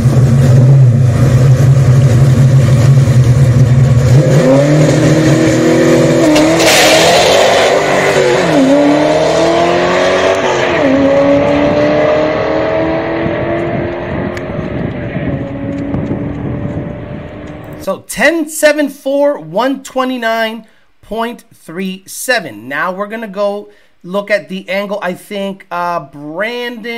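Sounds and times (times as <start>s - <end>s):
manual-transmission drag car on slick tires launching and accelerating: 0.0s - 17.8s
speech: 18.8s - 26.9s.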